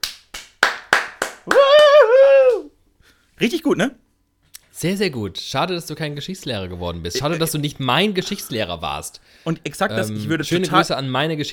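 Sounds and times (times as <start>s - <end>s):
sharp hand claps from one person: 0.0s - 2.7s
sustained high vocal whoop: 1.5s - 2.8s
speech: 3.4s - 4.0s, 4.8s - 11.5s.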